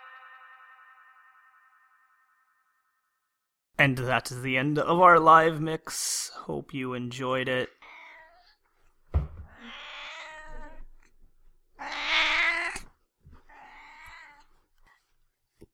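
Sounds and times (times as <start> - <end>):
speech: 3.8 - 7.8
cat meowing: 7.8 - 8.6, 9.5 - 11.1, 11.8 - 14.6.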